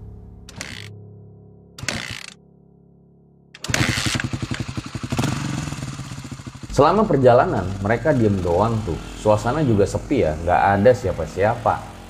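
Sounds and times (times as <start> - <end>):
community health centre motorcycle engine cranking: 0.5 - 0.9, 1.8 - 2.4, 3.6 - 12.0
community health centre motorcycle engine chugging and revving: 3.6 - 12.0
speech: 6.8 - 11.9.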